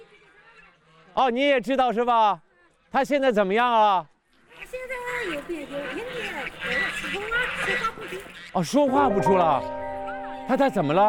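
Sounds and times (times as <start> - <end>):
speech: 1.2 - 4.1, 5.2 - 9.8, 10.5 - 11.0
large flock of geese honking and gabbling while being herded: 4.6 - 11.0.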